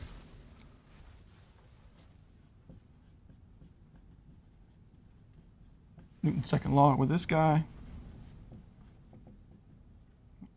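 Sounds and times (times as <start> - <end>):
handwriting scratching as equations are jotted down: 1.9 - 6.8, 7.7 - 10.5
speech: 6.2 - 7.8.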